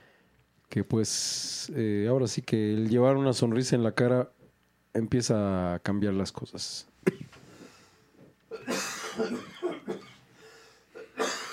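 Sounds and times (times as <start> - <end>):
speech: 0.7 - 4.4, 5.0 - 7.2, 9.2 - 9.6
person coughing while smiling: 7.1 - 7.3, 8.5 - 10.3, 10.9 - 11.5.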